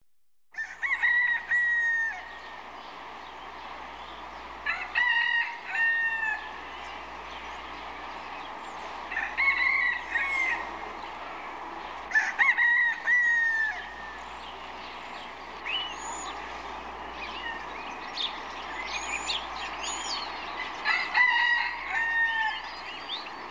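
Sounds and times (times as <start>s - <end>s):
village rooster crowing: 0.5s - 2.6s, 4.6s - 7.2s, 8.7s - 14.4s, 17.3s - 22.9s
bird: 0.6s - 23.4s.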